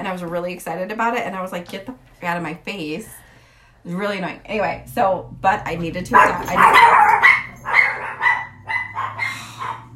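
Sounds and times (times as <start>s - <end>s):
speech: 0.0s - 3.2s, 3.8s - 7.1s
dog in Idaho barking frantically: 6.1s - 9.9s.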